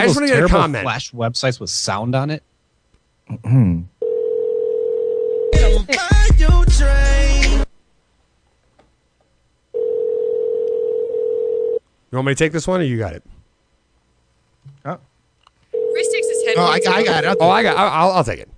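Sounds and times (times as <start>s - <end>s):
speech: 0.0s - 2.5s, 3.3s - 3.9s, 5.6s - 7.2s, 12.1s - 13.3s, 14.8s - 15.1s, 16.0s - 18.5s
steady low-pitched telephone dial tone while placing a call: 4.0s - 5.6s, 9.8s - 11.8s, 15.7s - 16.4s.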